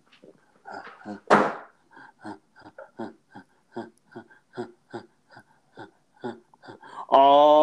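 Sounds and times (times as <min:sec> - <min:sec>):
speech: 0:00.7 - 0:01.6, 0:07.2 - 0:07.5
door shutting with a thud: 0:01.3 - 0:01.7.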